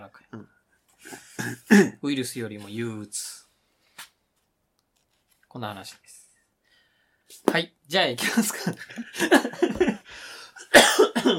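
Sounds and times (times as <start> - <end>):
person coughing harshly: 1.2 - 2.0, 10.6 - 11.3
speech: 1.4 - 3.4, 5.5 - 6.2, 7.4 - 11.3.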